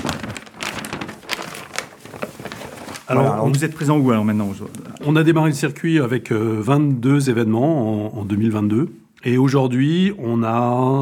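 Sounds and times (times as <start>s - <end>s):
paper world map crinkling and rustling as it is handled: 0.0s - 5.4s
speech: 3.1s - 10.9s.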